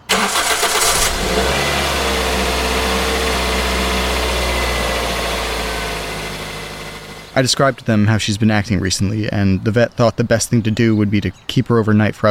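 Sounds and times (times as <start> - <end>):
car engine cranking over and catching: 0.0 - 7.8
speech: 7.4 - 12.2.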